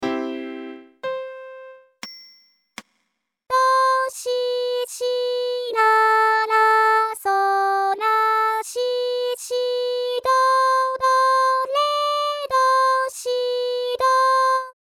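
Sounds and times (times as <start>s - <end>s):
vocals: 3.5s - 14.8s.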